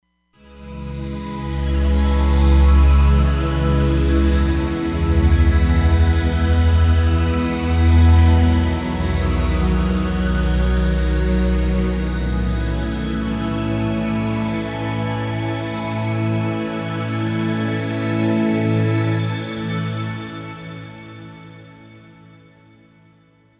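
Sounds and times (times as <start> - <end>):
mash synth pad on a Roland Fantom XR: 0.4 - 19.0.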